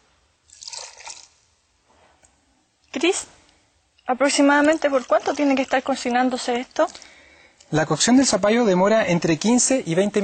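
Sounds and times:
water poured into a pot for cooking squash: 0:00.5 - 0:01.4, 0:04.5 - 0:07.1
speech: 0:03.0 - 0:03.4, 0:04.1 - 0:07.1, 0:07.7 - 0:10.2.

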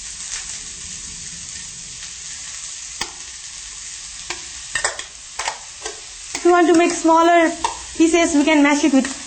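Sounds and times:
food frying in a pan over a lowered flame: 0:00.0 - 0:09.2
spoon mashing food in a pan over a flame: 0:04.3 - 0:07.9
speech: 0:06.5 - 0:09.2.

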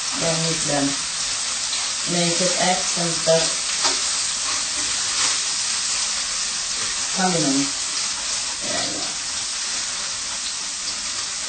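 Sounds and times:
running water from a tap washing salad: 0:00.0 - 0:11.4
speech: 0:00.2 - 0:01.1, 0:02.0 - 0:03.6, 0:07.2 - 0:07.8.

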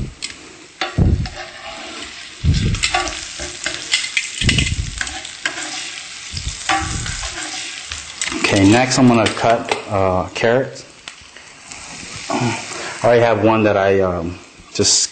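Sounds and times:
pineapple slices sizzling and frying in a pan: 0:00.0 - 0:15.0
speech: 0:08.5 - 0:10.8, 0:12.4 - 0:15.0.

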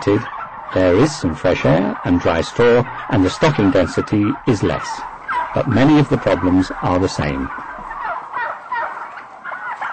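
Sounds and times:
speech: 0:00.0 - 0:07.7
farmed turkeys gobbling in a shed with dry straw: 0:00.0 - 0:09.9.

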